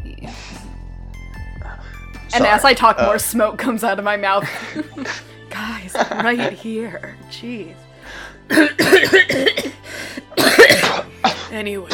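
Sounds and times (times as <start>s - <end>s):
speech: 2.3s - 5.3s, 5.9s - 9.7s, 11.5s - 11.9s
harsh hacking coughs: 8.5s - 11.9s.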